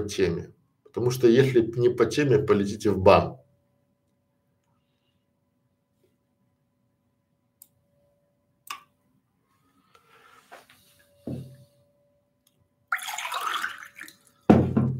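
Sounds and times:
speech: 0.0 - 3.4
water pouring into a glass: 12.9 - 14.5.

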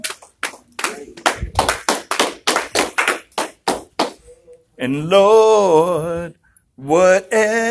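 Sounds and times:
audience clapping hands loudly: 0.0 - 4.2
speech: 4.8 - 7.6.

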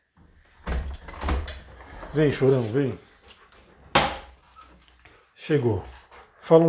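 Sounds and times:
door opening: 0.6 - 2.6
speech: 2.1 - 3.1, 5.5 - 6.6.

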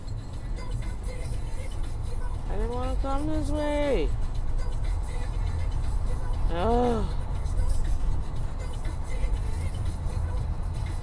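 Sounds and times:
car driving on a freeway in traffic: 0.0 - 11.0
speech: 2.5 - 4.3, 6.5 - 7.2
man exclaiming: 6.5 - 7.1.

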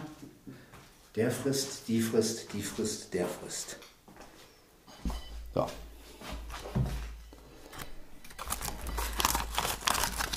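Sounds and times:
speech: 1.2 - 3.9, 5.6 - 5.9
plastic bags crinkling and rustling: 7.8 - 10.3.

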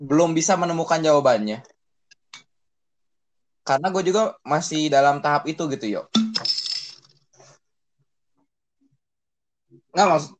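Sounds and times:
speech: 0.0 - 1.7, 3.7 - 6.2, 10.0 - 10.3
small metal bottle cap clattering onto a hard surface: 6.2 - 7.0.

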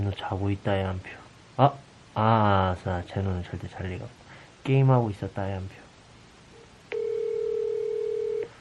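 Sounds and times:
speech: 0.0 - 5.8
telephone ringback tone: 6.9 - 8.5.

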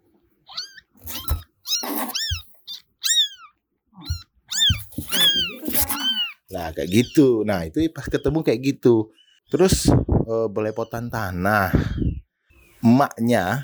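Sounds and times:
baby kitten meowing in high thin cries: 0.4 - 7.2
speech: 6.6 - 12.0, 13.0 - 13.6.

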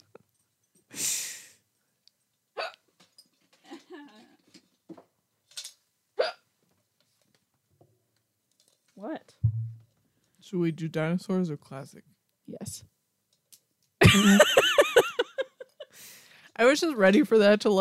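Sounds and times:
hiccups: 2.6 - 2.9, 6.2 - 6.5
speech: 10.5 - 12.9, 14.1 - 14.4, 16.6 - 17.8
laughter: 14.0 - 15.9.

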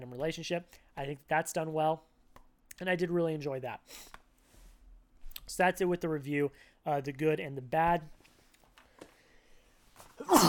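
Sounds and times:
speech: 0.2 - 2.1, 2.8 - 4.2, 5.5 - 8.2
faint breaths: 6.6 - 6.8, 8.8 - 9.9
sneeze: 10.2 - 10.4.

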